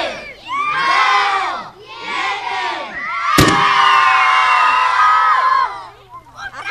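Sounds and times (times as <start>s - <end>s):
schoolchildren cheering and whooping excitedly: 0.0s - 1.6s, 2.8s - 6.6s
schoolchildren at a science demonstration shouting a countdown in unison in Polish: 0.0s - 6.6s
sharp bang of an acetylene and air mixture exploding: 3.4s - 4.0s.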